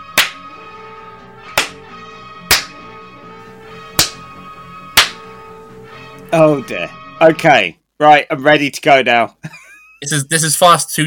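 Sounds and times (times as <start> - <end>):
person slapping themself: 0.1 - 0.4, 1.6 - 1.8, 2.5 - 2.7, 4.0 - 4.2, 5.0 - 5.2
speech: 6.3 - 11.0.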